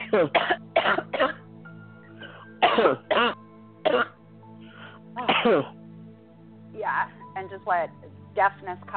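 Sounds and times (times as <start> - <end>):
person coughing during a prayer: 0.0 - 1.4, 2.2 - 4.2, 5.2 - 5.8
speech: 0.1 - 1.3, 2.8 - 4.0, 5.4 - 5.8, 6.9 - 8.9.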